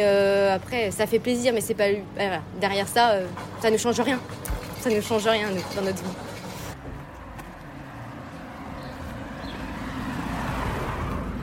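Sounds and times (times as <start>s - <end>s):
speech: 0.0s - 6.3s
small yellow postal car driving past: 8.8s - 11.4s.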